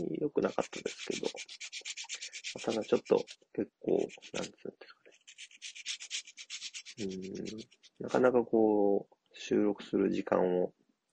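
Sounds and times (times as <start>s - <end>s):
speech: 0.0s - 1.9s, 2.5s - 4.9s, 7.0s - 10.8s
sanding or scraping strokes shaving the lip of a handmade fishing lure: 0.0s - 8.2s.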